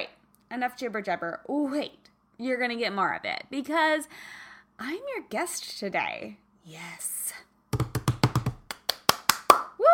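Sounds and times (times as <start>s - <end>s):
speech: 0.5s - 7.5s
sharp distinct hand claps: 7.8s - 9.8s.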